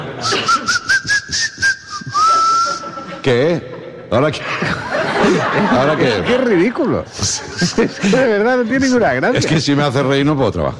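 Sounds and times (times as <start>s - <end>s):
laughter: 0.0s - 0.9s, 2.0s - 9.6s
whistling through the teeth: 0.2s - 3.0s
speech: 3.2s - 10.7s.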